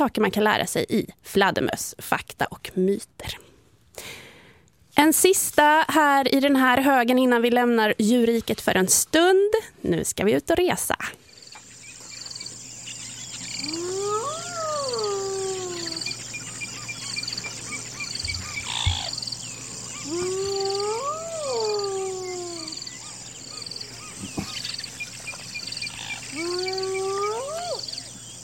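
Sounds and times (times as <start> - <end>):
speech: 0.0 - 3.4, 5.0 - 11.2
constant high insect-like hiss: 11.2 - 28.4
hyenas howling in South Africa: 13.6 - 17.6, 19.8 - 24.2, 25.9 - 28.2.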